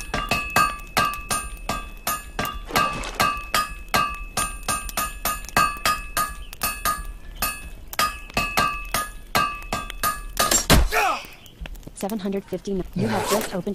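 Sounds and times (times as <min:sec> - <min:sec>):
hammer blows on metal: 0:00.1 - 0:10.6
speech: 0:12.1 - 0:13.7.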